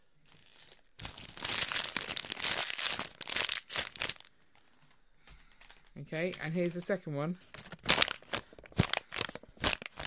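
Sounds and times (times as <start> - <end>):
paper packet crinkling and rustling: 0.2 - 4.3, 7.5 - 10.0
speech: 6.1 - 7.6.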